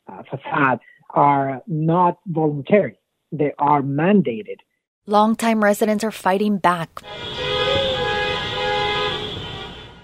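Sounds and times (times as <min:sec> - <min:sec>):
speech: 0:00.2 - 0:07.5
caravan of cars honking horns in a city street protest: 0:07.0 - 0:10.0
city street traffic noise: 0:07.0 - 0:10.0.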